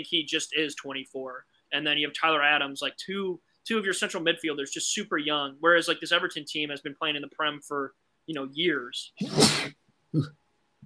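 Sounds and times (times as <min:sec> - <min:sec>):
speech: 0:00.0 - 0:10.4
person sneezing: 0:09.2 - 0:10.3.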